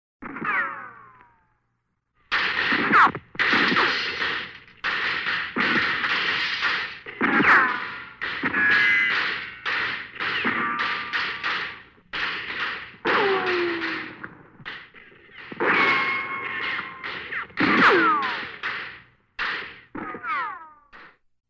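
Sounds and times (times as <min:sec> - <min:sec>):
Texas shootout gunfire: 0:02.3 - 0:20.7.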